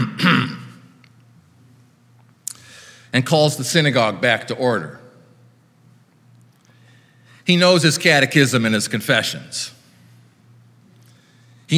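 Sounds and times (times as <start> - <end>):
man clearing his throat in a synagogue: 0.0 - 0.8
quiet noise in a synagogue: 0.0 - 11.7
speech: 3.1 - 5.0, 7.5 - 9.8.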